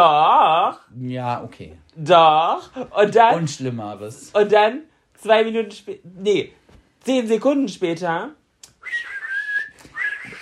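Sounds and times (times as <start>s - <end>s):
speech: 0.0s - 9.1s
person whistling a harmony melody: 8.8s - 10.4s.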